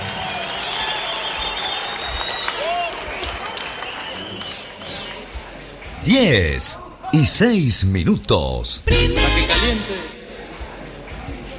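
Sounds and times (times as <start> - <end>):
audience applauding: 0.0 - 5.2
whistles: 0.2 - 5.2
speech: 6.0 - 10.2.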